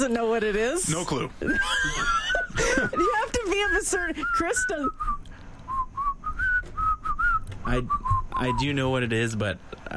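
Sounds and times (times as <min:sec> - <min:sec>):
speech: 0:00.0 - 0:05.2, 0:07.7 - 0:09.9
laughter: 0:01.4 - 0:03.7
person whistling a short melodic song tune in a studio: 0:02.9 - 0:08.6.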